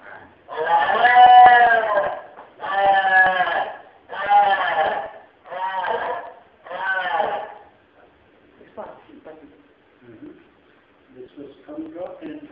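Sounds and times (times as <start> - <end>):
sheep bleating at a city market: 0.0 - 7.8.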